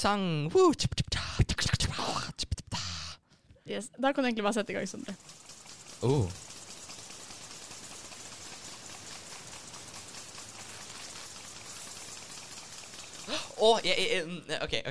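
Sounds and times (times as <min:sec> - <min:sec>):
speech: 0:00.0 - 0:02.0, 0:03.7 - 0:05.4, 0:06.0 - 0:06.5, 0:13.6 - 0:14.8
agricultural field sprinkler spraying water: 0:04.3 - 0:14.3.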